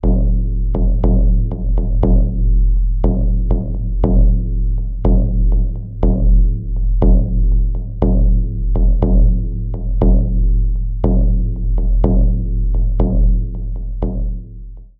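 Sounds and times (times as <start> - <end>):
tribal drum: 0.0 - 14.9.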